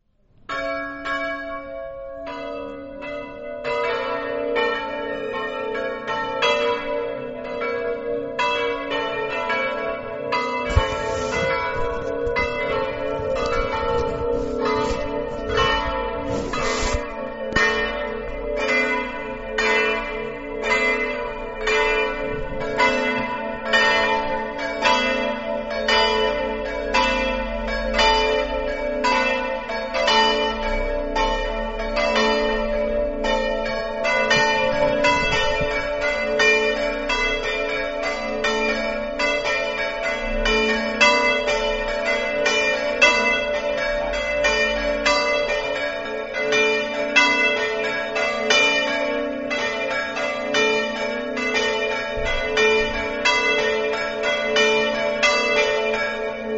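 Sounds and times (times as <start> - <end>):
bells ringing: 0.5 - 56.5.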